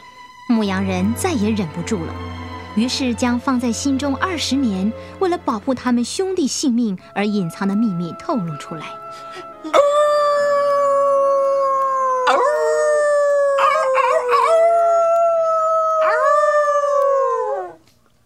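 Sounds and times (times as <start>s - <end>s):
speech: 0.6s - 9.8s
mournful wolf-like howling by two young brothers: 9.7s - 17.8s.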